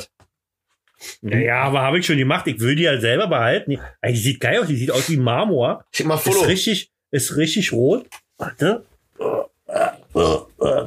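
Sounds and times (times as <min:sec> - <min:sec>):
speech: 0:01.2 - 0:09.5, 0:10.1 - 0:10.8
throaty burp-like croaks: 0:09.2 - 0:10.8.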